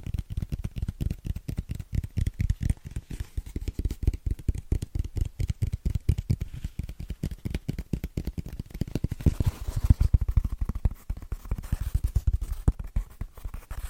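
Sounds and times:
fast rhythmic tapping on fitness foam: 0.0 - 13.8
faint papery crackle: 0.2 - 13.8.

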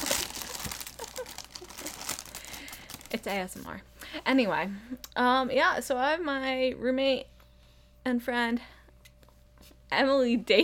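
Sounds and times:
crinkling plastic snack packaging being opened: 0.0 - 3.7
speech: 3.1 - 7.3, 8.0 - 8.7, 9.9 - 10.6.

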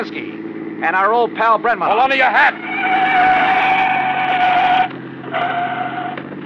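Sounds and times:
speech: 0.0 - 3.4
police car engine roaring past: 2.1 - 6.4.

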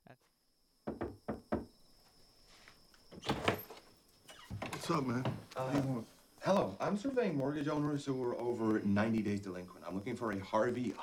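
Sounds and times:
firm knocking on a door: 0.8 - 1.8
speech: 4.9 - 11.0.

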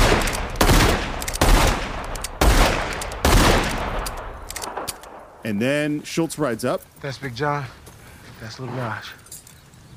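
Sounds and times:
gun shot repeatedly until empty in a film scene: 0.0 - 5.2
speech: 5.4 - 7.8, 8.4 - 9.2.

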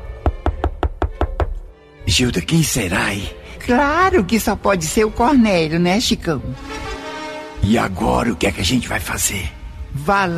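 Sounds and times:
solid knocks on a door: 0.2 - 1.6
speech: 2.1 - 6.8, 7.6 - 10.3.

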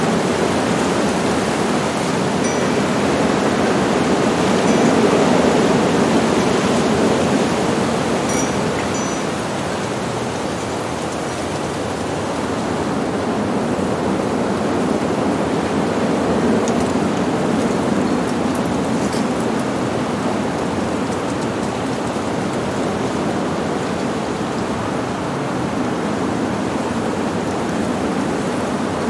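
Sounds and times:
light rain on a city street: 0.0 - 29.0
wind on a city street: 0.0 - 29.0.

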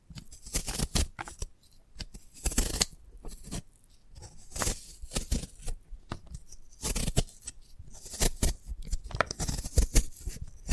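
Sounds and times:
sprouted coconut scratching, tapping and crackling: 0.1 - 10.7.

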